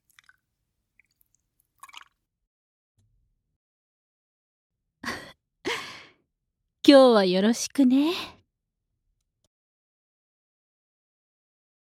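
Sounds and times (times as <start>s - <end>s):
breathing in through the nose and out through the mouth: 5.7s - 6.2s
speech: 6.9s - 8.4s.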